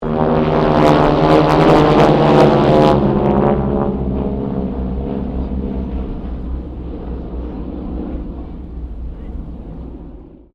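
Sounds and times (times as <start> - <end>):
Harvard aircraft squadron passing with distortion: 0.0 - 10.5.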